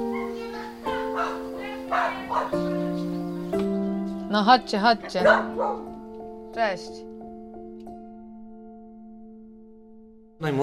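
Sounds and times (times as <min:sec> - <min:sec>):
dog barking and yipping in greeting: 0:00.1 - 0:03.0, 0:05.0 - 0:05.9
speech: 0:04.3 - 0:05.9, 0:06.6 - 0:07.1, 0:10.4 - 0:10.6.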